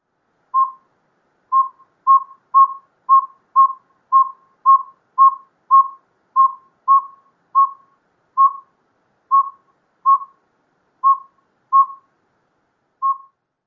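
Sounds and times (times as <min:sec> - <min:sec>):
northern saw-whet owl low whistled toots: 0:00.6 - 0:00.9, 0:01.5 - 0:08.7, 0:09.3 - 0:10.4, 0:11.0 - 0:12.1, 0:13.0 - 0:13.4.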